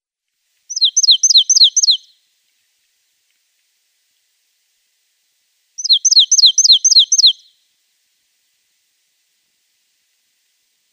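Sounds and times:
Marsh tit song: 0.7 - 2.2, 5.8 - 7.6.

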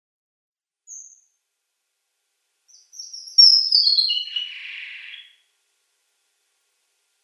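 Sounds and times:
red avadavat song: 0.9 - 1.4, 2.7 - 5.4.

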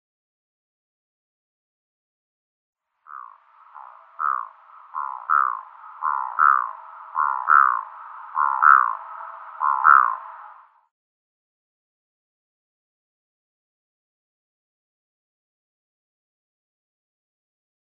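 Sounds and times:
black-throated diver flight calls: 3.1 - 10.7.

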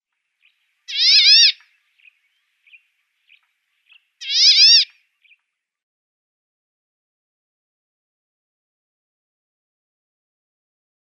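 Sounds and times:
Cinnamon-breasted Bunting singing: 0.4 - 5.4.

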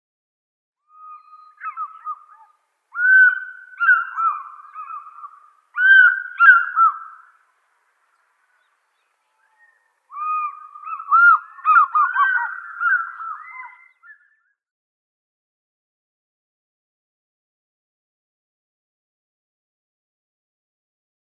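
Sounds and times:
African fish eagle calling: 0.9 - 7.3, 10.1 - 14.3.

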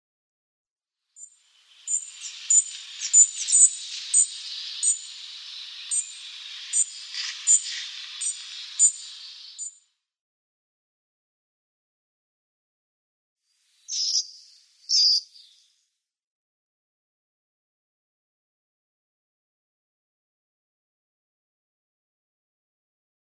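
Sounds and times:
Asian Brown Flycatcher calls: 1.2 - 9.8, 13.9 - 15.7.

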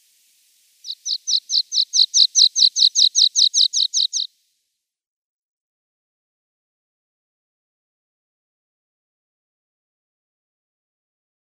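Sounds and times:
Water Pipit chirping song: 0.0 - 4.4.

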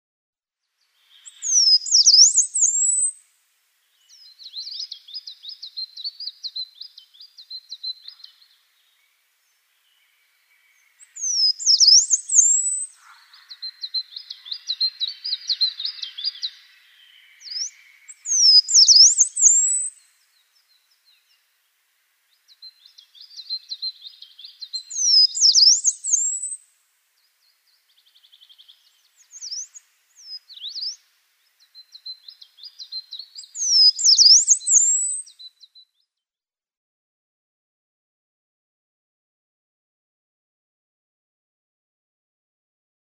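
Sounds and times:
Yellow-browed Warbler singing: 0.9 - 3.2, 3.9 - 26.6, 27.2 - 36.1.

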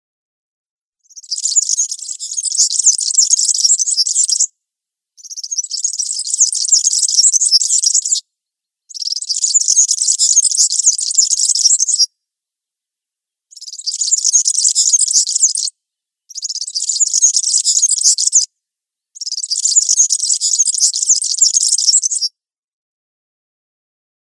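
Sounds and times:
European serin singing a glassy sizzling twitter: 1.1 - 4.5, 5.2 - 8.2, 8.9 - 12.1, 13.5 - 15.7, 16.3 - 18.5, 19.2 - 22.3.

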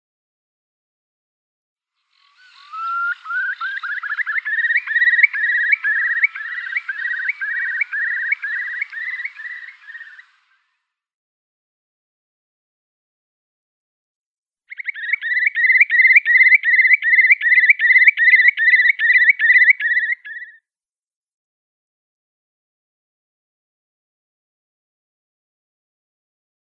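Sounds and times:
Eurasian curlew display call: 2.1 - 10.7, 14.7 - 20.6.

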